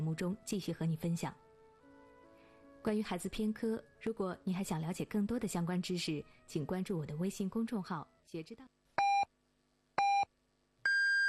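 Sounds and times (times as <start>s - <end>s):
speech: 0.0s - 1.4s, 2.8s - 8.8s
hourly radio time signal beeps: 9.0s - 9.3s, 10.0s - 10.3s.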